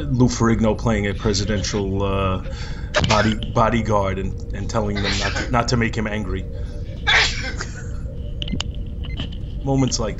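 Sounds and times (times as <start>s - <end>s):
speech: 0.0s - 6.7s, 9.6s - 10.1s
low hum: 0.0s - 10.1s
person sneezing: 5.0s - 5.5s, 7.1s - 7.7s.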